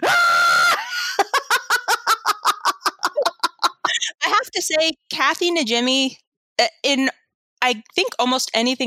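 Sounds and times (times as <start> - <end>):
woman screaming high-pitched: 0.0 - 1.2
laughter: 0.8 - 4.2
speech: 4.6 - 8.8.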